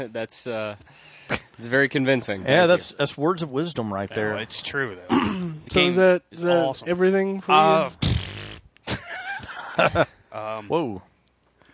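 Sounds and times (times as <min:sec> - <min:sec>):
speech: 0:00.0 - 0:08.1, 0:09.8 - 0:11.1
person blowing a wet buzzing raspberry imitating a fart: 0:07.6 - 0:08.7.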